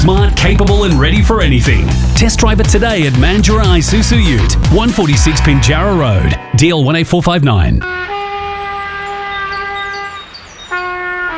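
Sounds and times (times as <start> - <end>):
speech: 0.0 - 8.2
beginner child blaring a long unpolished trumpet note: 3.5 - 11.3.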